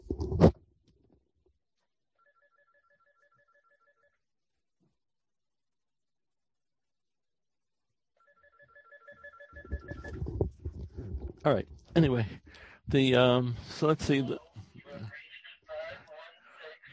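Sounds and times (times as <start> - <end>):
phone ringtone playing a short electronic melody: 2.2 - 4.2, 8.2 - 10.4
speech: 11.4 - 14.4.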